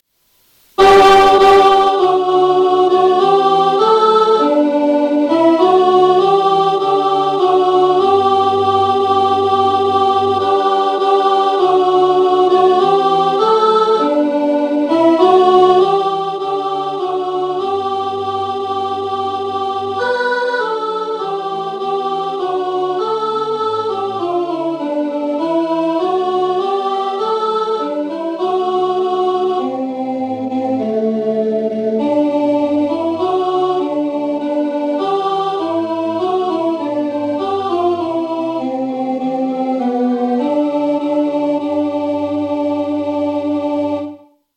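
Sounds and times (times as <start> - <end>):
alto voice singing in rehearsal: 0.7 - 44.4.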